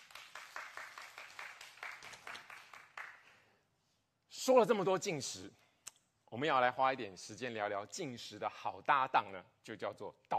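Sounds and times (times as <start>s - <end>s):
crowd applauding to give glory to God: 0.0s - 3.4s
speech: 4.5s - 5.6s, 6.3s - 10.3s.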